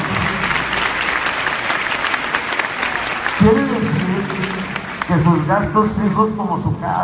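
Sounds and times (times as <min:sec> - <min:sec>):
audience applause for a champion: 0:00.0 - 0:06.8
speech: 0:03.4 - 0:04.4, 0:05.1 - 0:07.0.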